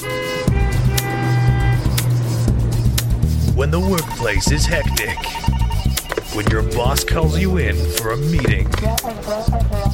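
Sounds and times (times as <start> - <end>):
tonal horn-like drone: 0.0 - 2.1, 3.7 - 8.4
traffic engine rumble: 0.0 - 9.9
speech: 3.6 - 5.6, 6.3 - 9.9.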